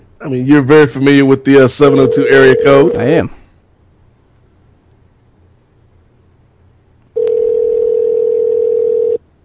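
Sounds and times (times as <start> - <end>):
speech: 0.2 - 3.4
telephone dial tone: 7.2 - 9.2.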